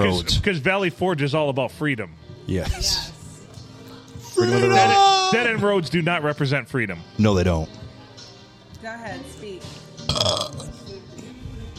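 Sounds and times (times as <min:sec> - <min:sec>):
speech: 0:00.0 - 0:03.1, 0:04.4 - 0:07.8, 0:08.8 - 0:10.7
loud raspy burp: 0:10.1 - 0:10.8.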